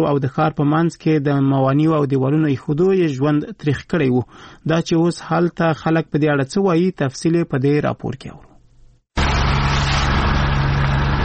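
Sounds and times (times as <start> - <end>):
speech: 0.0 - 8.5
municipal vehicle engine drone while removing road barriers in a town: 9.2 - 11.2.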